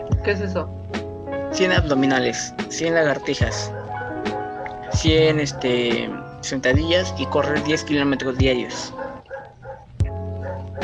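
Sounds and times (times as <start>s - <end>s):
speech: 0.2s - 0.8s, 1.5s - 9.0s
dog barking and whining: 3.6s - 6.4s, 8.0s - 10.8s.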